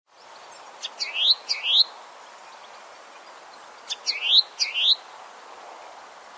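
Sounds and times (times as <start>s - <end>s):
faint steady background hiss: 0.1s - 6.3s
bird giving sharp rising upslurred chirps: 0.2s - 5.0s.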